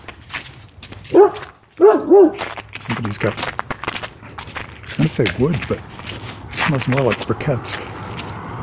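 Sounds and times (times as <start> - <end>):
dog barking: 1.1 - 2.5
speech: 1.1 - 3.6, 4.9 - 5.9, 6.7 - 7.9.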